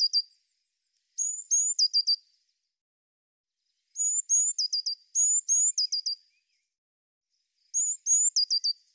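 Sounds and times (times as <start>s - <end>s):
Eurasian blue tit giving high-pitched phrases: 0.0s - 0.3s, 1.2s - 2.2s, 4.0s - 6.3s, 7.7s - 8.8s.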